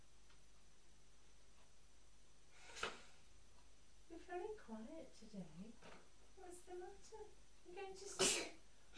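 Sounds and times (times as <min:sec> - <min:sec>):
speech: 0:04.7 - 0:08.9
child sneezing: 0:08.1 - 0:08.6.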